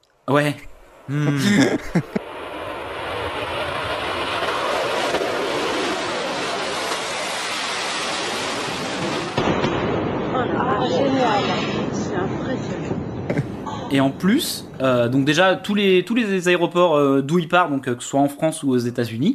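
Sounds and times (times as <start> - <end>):
speech: 0.3 - 2.2, 13.9 - 19.3
laughter: 1.1 - 2.2
Concorde supersonic jet airliner engines roaring: 2.1 - 9.4, 10.2 - 15.4.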